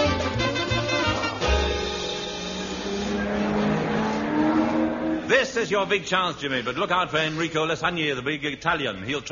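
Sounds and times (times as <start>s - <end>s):
race car engine roaring through a race: 1.0s - 5.5s
speech: 5.5s - 9.3s.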